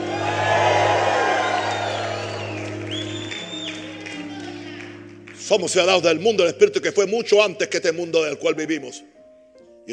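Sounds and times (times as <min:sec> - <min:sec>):
large crowd shouting and cheering in victory: 0:00.0 - 0:04.7
speech: 0:05.5 - 0:09.2.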